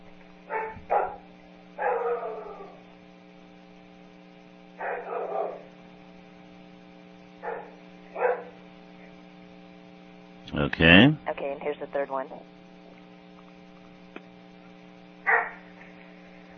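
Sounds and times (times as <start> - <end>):
low electrical hum: 0.0 - 16.5
dog barking: 0.5 - 2.8, 4.8 - 5.7, 7.4 - 8.6, 15.3 - 15.7
speech: 10.6 - 12.6.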